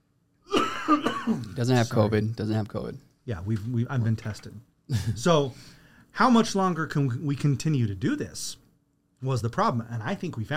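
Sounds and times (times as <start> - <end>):
raspy cough: 0.5 - 1.6
speech: 0.9 - 8.6, 9.2 - 10.5.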